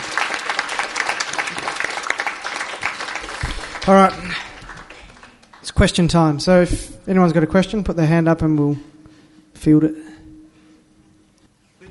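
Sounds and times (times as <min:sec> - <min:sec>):
audience clapping: 0:00.0 - 0:06.4
speech: 0:03.9 - 0:04.2, 0:05.8 - 0:08.9, 0:09.6 - 0:10.0.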